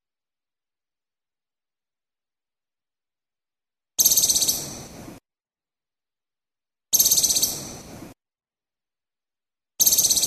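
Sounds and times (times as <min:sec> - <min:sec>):
Moluccan woodcock giving a high-pitched rapidly pulsed rattle call in Maluku: 0:04.0 - 0:04.8, 0:07.0 - 0:07.7, 0:09.8 - 0:10.2.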